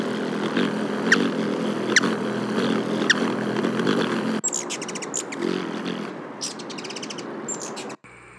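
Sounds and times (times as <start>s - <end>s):
Black-chinned Hummingbird high chips: 0.0s - 8.0s
quick buzzy rattles of rapid notes: 0.0s - 8.0s.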